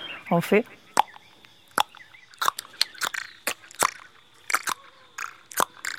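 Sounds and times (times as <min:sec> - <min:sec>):
speech: 0:00.3 - 0:00.8
person making sharp mouth clicks while approaching gorillas: 0:01.8 - 0:05.9.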